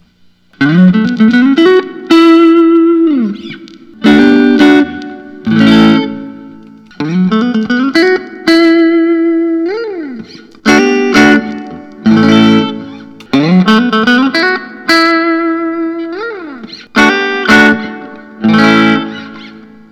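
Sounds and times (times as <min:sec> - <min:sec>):
natural Fender Telecaster electric guitar: 0:00.0 - 0:19.8.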